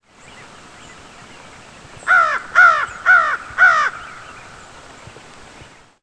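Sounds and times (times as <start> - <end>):
American crow giving harsh hoarse caws: 2.1 - 4.3.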